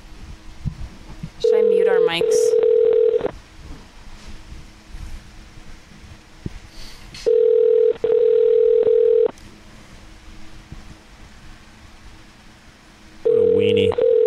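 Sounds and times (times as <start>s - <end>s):
telephone ringing tones while a call is placed: 1.4s - 3.3s, 7.3s - 9.3s, 13.3s - 14.2s
speech: 2.1s - 2.7s.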